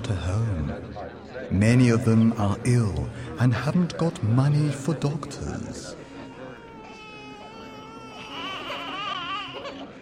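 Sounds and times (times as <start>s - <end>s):
speech: 0.1s - 6.0s
children crying with wavering wails: 6.1s - 9.9s.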